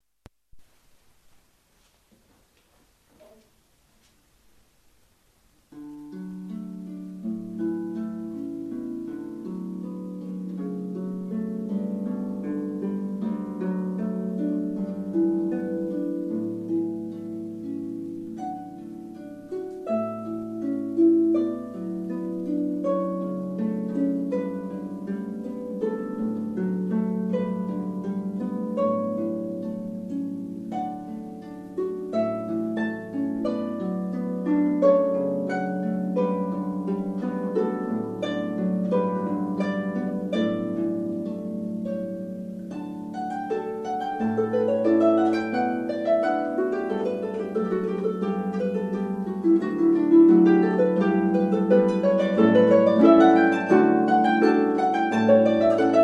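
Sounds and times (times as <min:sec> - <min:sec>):
harpist playing at a wedding: 0:05.7 - 0:56.0.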